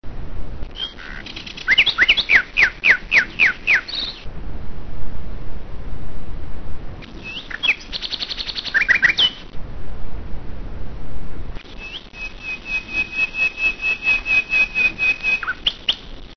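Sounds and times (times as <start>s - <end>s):
nightingale songbird singing: 0.7s - 4.3s, 7.2s - 9.5s, 11.6s - 16.1s.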